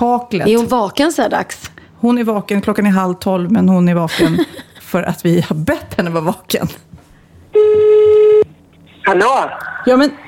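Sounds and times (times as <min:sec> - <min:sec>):
speech: 0:00.0 - 0:06.9, 0:09.0 - 0:10.2
laughter: 0:04.1 - 0:04.8
electronic ringback tone from an outgoing phone call: 0:07.6 - 0:08.4.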